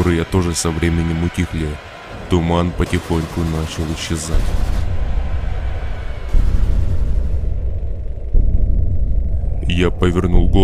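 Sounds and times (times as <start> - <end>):
speech: 0.0 - 4.7, 9.7 - 10.6
heavy continuous low rumbling of distant explosions: 2.8 - 10.6
deeper booms: 4.3 - 10.6.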